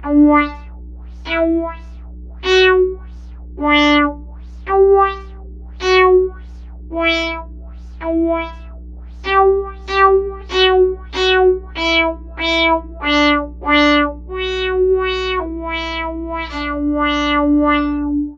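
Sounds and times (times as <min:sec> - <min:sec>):
wah-wah sound: 0:00.0 - 0:00.7, 0:01.3 - 0:03.0, 0:03.6 - 0:18.3.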